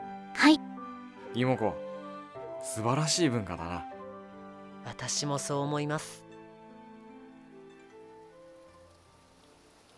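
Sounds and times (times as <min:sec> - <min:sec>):
speech: 0:00.4 - 0:00.7, 0:01.3 - 0:01.8, 0:02.6 - 0:03.9, 0:04.8 - 0:06.2
light rain falling: 0:07.8 - 0:09.9.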